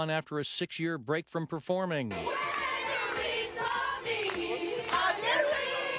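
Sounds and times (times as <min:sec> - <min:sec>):
speech: 0:00.0 - 0:02.6
sold-out concert crowd in Paris cheering: 0:02.1 - 0:05.9.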